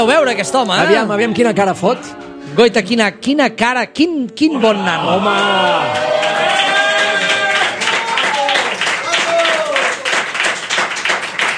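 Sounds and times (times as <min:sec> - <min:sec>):
speech: 0:00.0 - 0:06.2
raised voices cheering and calling out: 0:04.6 - 0:10.3
crowd applauding with dense rapid clapping: 0:05.2 - 0:11.5.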